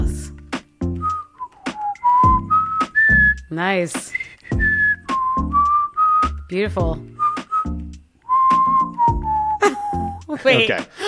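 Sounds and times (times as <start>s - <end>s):
person whistling a short clear melody: 0.8s - 6.5s, 7.2s - 10.3s
speech: 3.5s - 4.2s, 6.5s - 7.1s, 10.4s - 11.0s.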